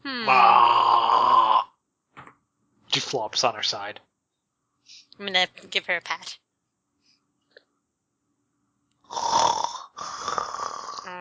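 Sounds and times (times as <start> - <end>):
person snoring while asleep: 0.1 - 1.7, 9.1 - 11.1
speech: 3.0 - 4.1, 5.2 - 6.4.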